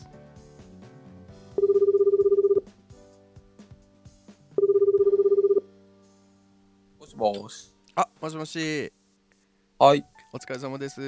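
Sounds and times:
outgoing phone call ringback tone with warbling buzz: 1.5s - 2.7s, 4.6s - 5.7s
speech: 7.2s - 9.0s, 9.8s - 11.0s.

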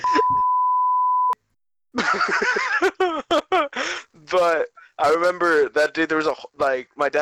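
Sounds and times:
censor beep: 0.0s - 1.4s
loud laughter: 2.0s - 3.8s
speech: 4.3s - 7.2s.

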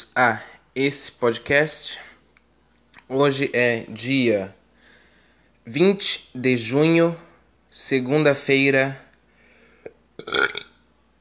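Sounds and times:
speech: 0.0s - 2.1s, 3.1s - 4.6s, 5.6s - 9.0s, 10.3s - 10.6s
loud burp: 10.2s - 10.8s.

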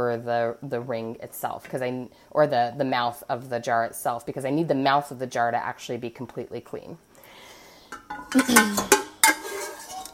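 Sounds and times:
speech: 0.0s - 7.1s, 8.0s - 9.0s
utensil scraping sauce from inside a metal cooking pot: 7.9s - 10.1s.

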